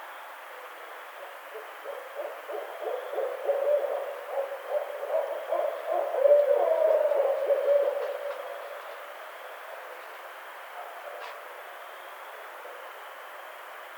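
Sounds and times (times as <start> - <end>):
constant hiss: 0.0 - 13.9
barred owl hooting: 1.2 - 9.9.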